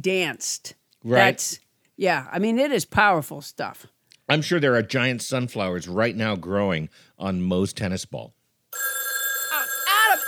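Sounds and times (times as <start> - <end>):
speech: 0.0 - 9.0
telephone ringing with a steady electronic tone: 8.7 - 10.2.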